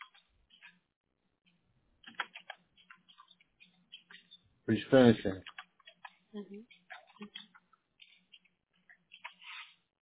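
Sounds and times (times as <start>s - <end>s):
typing on a computer keyboard: 1.5s - 4.4s, 5.4s - 9.4s
speech: 4.7s - 5.5s, 6.3s - 7.5s.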